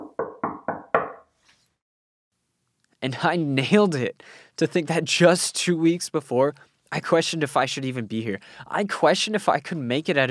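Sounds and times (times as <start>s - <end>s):
knocking on a door: 0.0s - 1.2s
speech: 3.0s - 10.2s.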